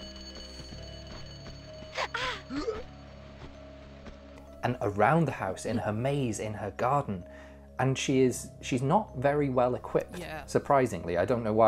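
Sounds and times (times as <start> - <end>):
speech: 2.0 - 2.9, 4.6 - 11.6
strangers grunting and panting in a dark house: 2.0 - 2.9.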